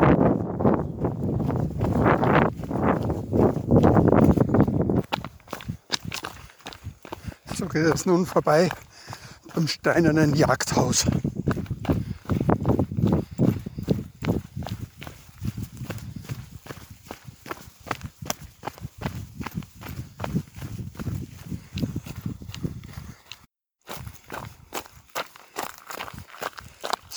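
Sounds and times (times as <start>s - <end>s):
soft rumble of wind: 0.0s - 7.7s, 10.4s - 23.3s
footsteps crunching downhill on a stony gravel forest road: 0.0s - 27.1s
speech: 7.8s - 8.9s, 9.6s - 11.3s.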